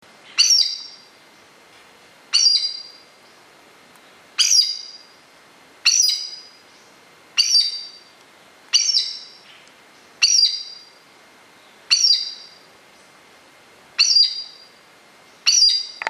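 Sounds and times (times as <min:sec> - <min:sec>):
Chestnut eared Aracari Pteroglossus castanotis calling: 0:02.3 - 0:03.0, 0:04.4 - 0:05.0, 0:05.8 - 0:08.0, 0:08.7 - 0:09.4, 0:10.2 - 0:10.9, 0:11.9 - 0:12.6, 0:14.0 - 0:14.7, 0:15.4 - 0:16.0.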